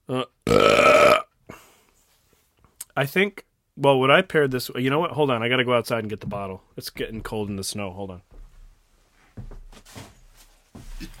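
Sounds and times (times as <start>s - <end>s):
loud rumbling burp: 0.2s - 1.3s
speech: 3.0s - 8.3s.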